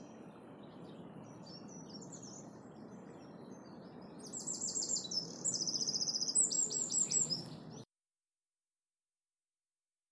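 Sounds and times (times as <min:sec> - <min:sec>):
Eurasian wren Troglodytes troglodytes singing: 0:00.4 - 0:07.8.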